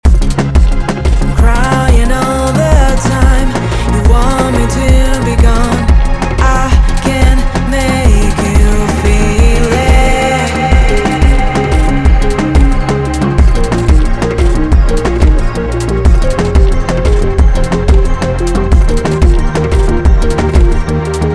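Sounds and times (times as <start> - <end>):
sound sent to a large reverb: 0.1 - 21.3.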